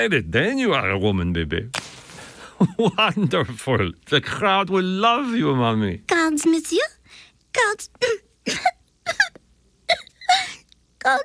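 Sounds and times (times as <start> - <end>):
speech: 0.0 - 1.9, 2.6 - 9.2, 10.3 - 11.2
laughter: 2.4 - 3.7
person learning to smoke a cigarette coughing: 8.5 - 9.4.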